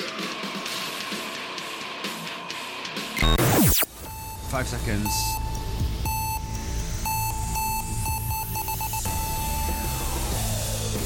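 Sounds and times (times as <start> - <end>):
loud heavy metal cover of a pop song: 0.0 - 11.0
shrill beeping lead melody: 3.2 - 10.7
speech: 4.5 - 5.4.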